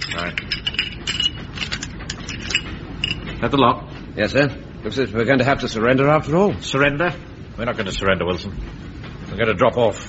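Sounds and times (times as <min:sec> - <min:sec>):
rifle bolts clicking and rattling as they are pulled out and tossed through a door: 0:00.0 - 0:03.3
speech: 0:00.1 - 0:00.6, 0:03.4 - 0:08.8, 0:09.4 - 0:10.0.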